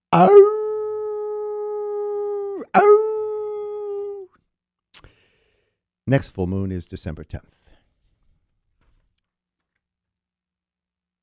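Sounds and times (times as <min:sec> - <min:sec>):
speech: 0:00.1 - 0:00.6, 0:02.7 - 0:03.1, 0:06.1 - 0:07.7
man imitating a wolf's howl at the full moon: 0:00.1 - 0:04.3.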